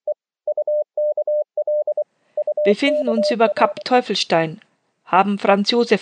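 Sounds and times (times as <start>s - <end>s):
radio receiver beeping Morse code: 0.5s - 3.9s
speech: 2.6s - 5.9s.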